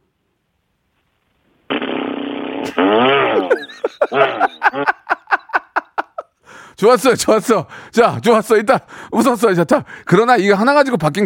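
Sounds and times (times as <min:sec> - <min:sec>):
person vocally imitating an electric chainsaw: 0:02.4 - 0:05.0
speech: 0:02.8 - 0:05.0, 0:06.8 - 0:11.2
laughter: 0:03.3 - 0:06.3.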